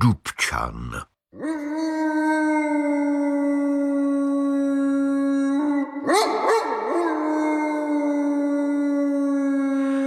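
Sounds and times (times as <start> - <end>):
speech: 0.0 - 1.6
large dog howling eerily: 1.4 - 10.0.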